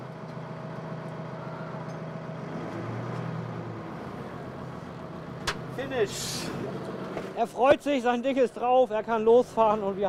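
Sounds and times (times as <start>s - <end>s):
forklift engine droning while pushing a heavy truck: 0.0s - 7.4s, 9.0s - 10.0s
speech: 5.8s - 10.0s.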